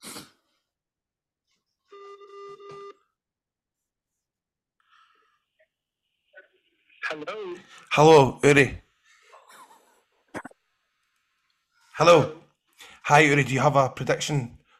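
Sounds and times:
telephone ringing during a prank call: 0:01.9 - 0:03.0
speech: 0:07.1 - 0:08.8, 0:12.0 - 0:12.4, 0:13.1 - 0:14.6.

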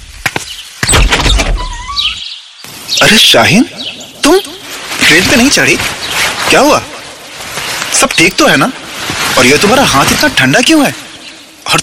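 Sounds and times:
door squeak: 0:00.9 - 0:02.2
speech: 0:03.0 - 0:04.5, 0:05.1 - 0:06.9, 0:08.0 - 0:08.8, 0:09.4 - 0:11.0.

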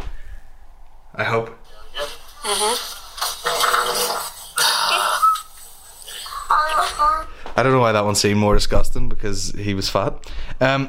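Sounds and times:
speech: 0:01.2 - 0:04.3, 0:06.7 - 0:10.8
sputtering flatulence bursts from a played recording of a sedated patient during colonoscopy: 0:02.4 - 0:07.0.

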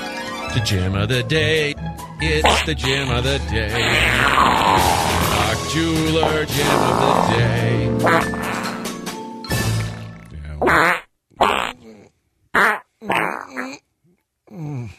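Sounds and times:
speech: 0:00.5 - 0:05.1, 0:05.7 - 0:08.4, 0:10.6 - 0:10.9
loud sputtering fart sounds: 0:03.7 - 0:05.6, 0:06.2 - 0:09.0, 0:09.7 - 0:13.8.

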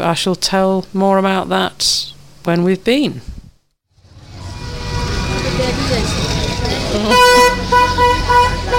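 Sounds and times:
speech: 0:00.0 - 0:03.4
roar of motorbike and vehicle engines on a street in Kathmandu: 0:03.9 - 0:08.7
indistinct voices: 0:04.1 - 0:08.7
overlapping vehicle horns honking on a street in Kathmandu: 0:04.1 - 0:08.7.

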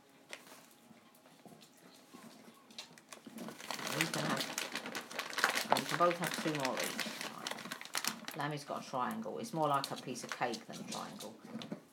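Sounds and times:
crinkly packet rustling and crackling: 0:02.7 - 0:11.7
speech: 0:05.9 - 0:07.2, 0:08.4 - 0:11.6.

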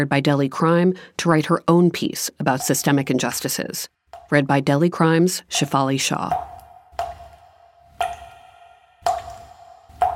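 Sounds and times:
speech: 0:00.0 - 0:06.5
water dripping: 0:02.4 - 0:04.5, 0:05.4 - 0:10.1.

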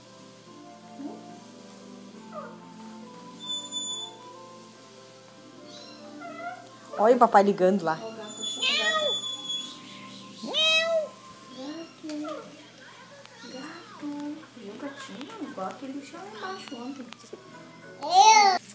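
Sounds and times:
speech: 0:07.0 - 0:08.1
children's high-pitched voices chattering and calling out: 0:08.1 - 0:09.8, 0:10.4 - 0:18.7
cat meowing: 0:08.2 - 0:09.5, 0:10.5 - 0:11.7.

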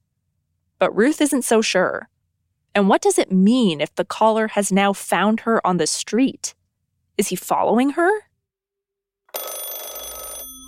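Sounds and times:
speech: 0:00.8 - 0:02.1, 0:02.8 - 0:06.6, 0:07.2 - 0:08.2
telephone bell ringing for incoming calls to a house: 0:09.3 - 0:10.6.

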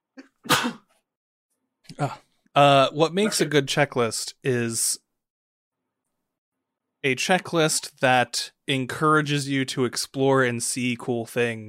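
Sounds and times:
person sneezing: 0:00.4 - 0:00.9
speech: 0:01.9 - 0:05.0, 0:07.0 - 0:11.6.

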